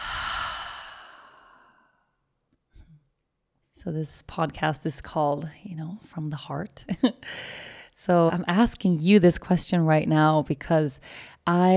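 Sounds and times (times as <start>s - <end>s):
deep breathy exhale after a full inhale: 0.0s - 2.0s
speech: 3.8s - 11.7s.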